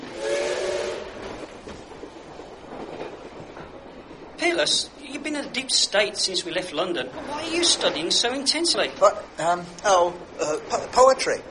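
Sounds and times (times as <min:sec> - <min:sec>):
train whistle-like tone: 0:00.0 - 0:01.4
train rumbling on tracks: 0:00.0 - 0:11.4
speech: 0:04.4 - 0:11.4.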